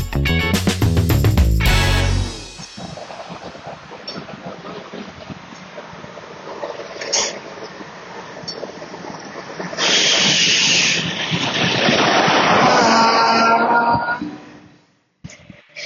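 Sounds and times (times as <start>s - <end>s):
train arriving at station rumbling: 0.2s - 14.2s
thin squealing tone: 12.7s - 14.7s.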